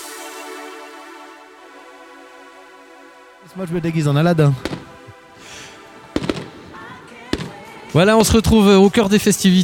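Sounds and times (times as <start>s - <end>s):
speech: 3.6s - 4.8s, 8.0s - 9.6s
fireworks going off at a festival celebration: 4.6s - 8.9s.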